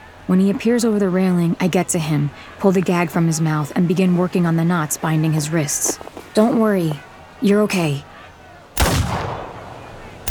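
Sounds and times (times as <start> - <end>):
speech: 0.3 - 8.1
loud gunshots: 8.8 - 10.3.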